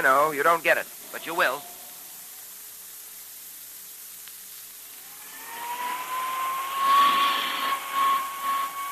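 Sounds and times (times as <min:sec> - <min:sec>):
speech: 0:00.0 - 0:01.7
small hand vacuum running over coat fabric: 0:05.1 - 0:08.9.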